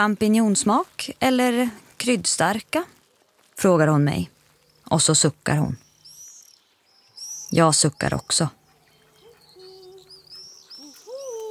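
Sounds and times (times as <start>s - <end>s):
speech: 0.0s - 3.0s, 3.6s - 5.8s, 7.5s - 8.6s
light hiss: 0.0s - 11.5s
grandmother making soft owl-like hoots: 10.8s - 11.5s.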